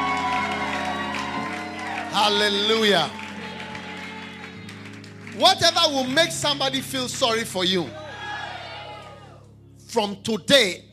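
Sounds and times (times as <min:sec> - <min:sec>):
cheering: 0:00.0 - 0:06.2, 0:07.9 - 0:09.4
audience applause: 0:00.0 - 0:06.9
speech: 0:02.1 - 0:03.2, 0:05.4 - 0:08.0, 0:09.9 - 0:10.9.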